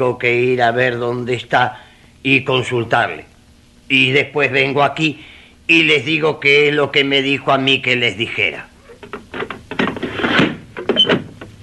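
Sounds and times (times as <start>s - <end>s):
speech: 0.0s - 3.3s, 3.9s - 9.2s
door pushed shut with a scraping rattling thud: 9.1s - 11.5s.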